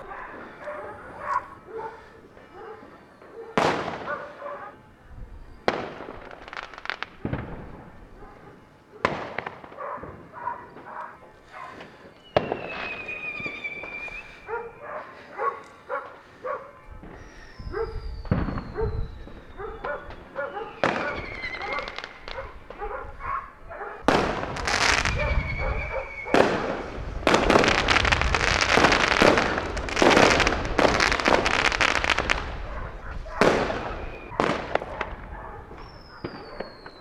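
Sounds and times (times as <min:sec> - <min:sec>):
firecrackers and fireworks set off outdoors at New Year: 0:00.0 - 0:04.8, 0:05.5 - 0:36.9.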